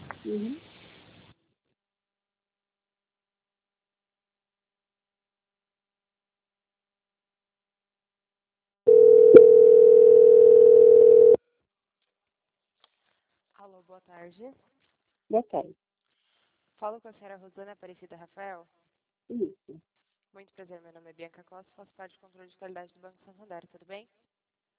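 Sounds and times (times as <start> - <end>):
speech: 0.2 - 0.7, 14.0 - 15.9, 16.8 - 24.3
telephone line tone while a call is being transferred: 8.9 - 11.4.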